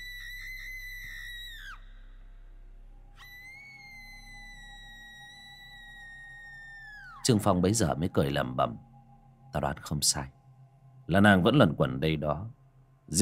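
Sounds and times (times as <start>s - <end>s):
woman screaming outside: 0.0s - 2.0s, 3.2s - 7.2s
low steady hum: 0.0s - 13.2s
speech: 7.2s - 8.9s, 9.5s - 10.4s, 11.1s - 13.2s.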